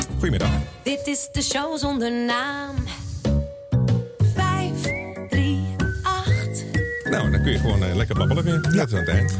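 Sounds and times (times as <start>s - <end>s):
speech: 0.2s - 3.0s, 7.1s - 9.3s
whistled melody in a radio jingle: 4.5s - 9.3s.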